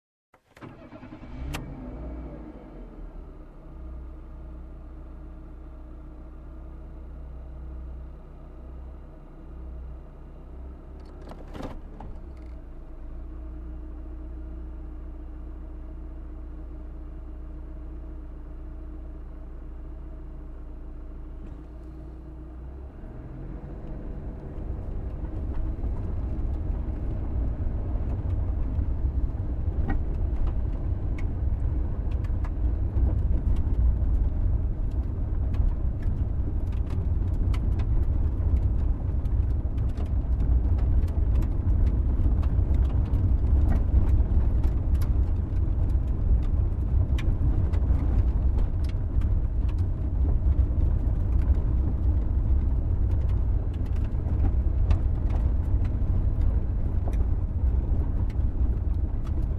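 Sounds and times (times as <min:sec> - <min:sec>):
ride in car on dirt road: 0:00.4 - 0:59.5.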